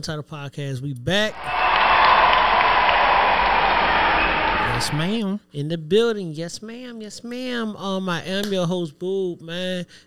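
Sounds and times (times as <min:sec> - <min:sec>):
speech: 0:00.0 - 0:01.6, 0:04.8 - 0:10.0
dense steady hand clapping: 0:01.3 - 0:05.0.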